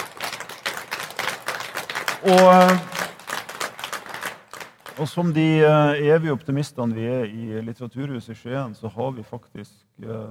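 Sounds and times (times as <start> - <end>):
small audience clapping: 0.0 - 5.6
speech: 2.2 - 2.9, 5.0 - 10.2.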